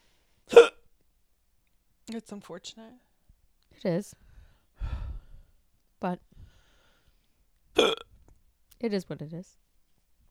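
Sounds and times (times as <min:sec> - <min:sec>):
hiccup: 0:00.5 - 0:00.8, 0:07.8 - 0:08.1
speech: 0:02.1 - 0:03.1, 0:03.7 - 0:04.9, 0:06.0 - 0:06.3, 0:08.8 - 0:09.6.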